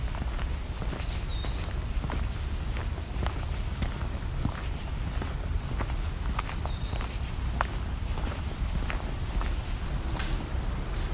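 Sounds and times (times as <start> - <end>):
footsteps crunching: 0.0 - 11.1
Eastern Wood-Pewee song: 1.0 - 2.2, 6.4 - 7.5.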